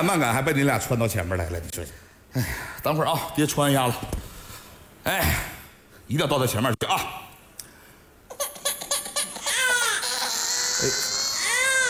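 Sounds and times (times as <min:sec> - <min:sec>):
speech: 0:00.0 - 0:04.3, 0:05.0 - 0:05.5, 0:06.1 - 0:07.3, 0:10.8 - 0:11.0
hungry infant crying with sobbing and high-pitched wailing: 0:08.3 - 0:11.8.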